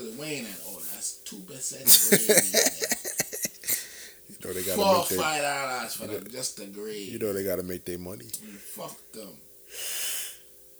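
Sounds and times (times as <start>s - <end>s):
laughter: 0.2s - 1.0s, 1.9s - 6.4s
speech: 0.2s - 3.2s, 4.5s - 9.9s
breathy yawn exhaled into a microphone: 1.9s - 5.3s.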